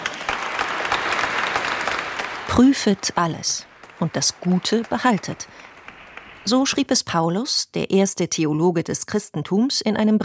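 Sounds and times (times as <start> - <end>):
congregation applauding during a church service: 0.0 - 7.0
speech: 2.6 - 5.7, 6.4 - 10.2.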